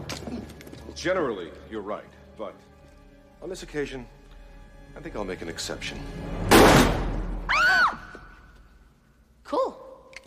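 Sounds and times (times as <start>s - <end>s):
speech: 1.0s - 2.7s, 3.4s - 4.2s, 5.0s - 6.9s
gunshot: 6.5s - 7.2s.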